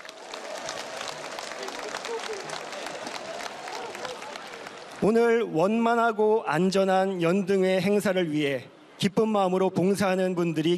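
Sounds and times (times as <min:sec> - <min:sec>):
large crowd applauding: 0:00.0 - 0:05.6
speech: 0:05.0 - 0:10.7.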